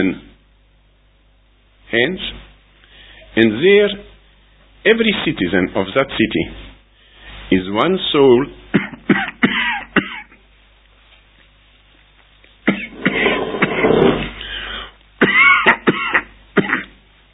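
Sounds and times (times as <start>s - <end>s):
speech: 0.0s - 0.3s, 1.9s - 2.5s, 3.4s - 4.1s, 4.8s - 6.7s, 7.5s - 10.1s
person coughing harshly: 8.7s - 10.4s, 12.7s - 14.4s, 15.2s - 17.0s
person rasping throat-clearing: 8.7s - 10.4s, 12.7s - 14.4s, 15.2s - 17.0s.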